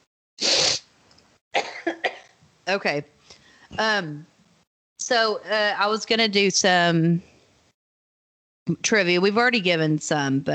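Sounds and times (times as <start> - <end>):
person coughing after sipping a drink: 1.6 - 2.4
speech: 2.7 - 4.3, 5.0 - 7.3, 8.7 - 10.5.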